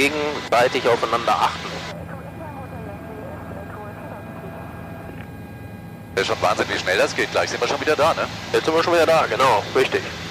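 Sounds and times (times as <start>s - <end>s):
speech: 0.0s - 2.0s, 6.2s - 10.2s
helicopter in flight cabin drone with engine whine: 0.0s - 10.2s.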